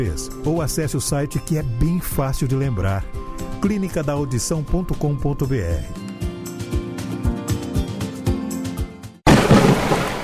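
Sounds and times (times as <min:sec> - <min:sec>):
speech: 0:00.0 - 0:06.0
steady rhythmic music bed: 0:01.8 - 0:09.2
loud crash of thunder and stormy noise: 0:09.3 - 0:10.2.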